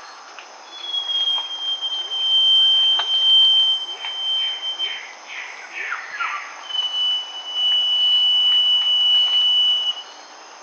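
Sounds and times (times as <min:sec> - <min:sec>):
constant high hiss: 0:00.0 - 0:10.6
northern scrub robin giving a long thin whistle: 0:00.6 - 0:10.3.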